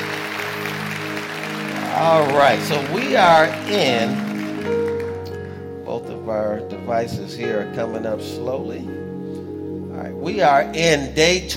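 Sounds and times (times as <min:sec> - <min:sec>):
audience applause: 0:00.0 - 0:05.4
speech: 0:02.0 - 0:04.8, 0:06.3 - 0:09.1, 0:10.0 - 0:11.5.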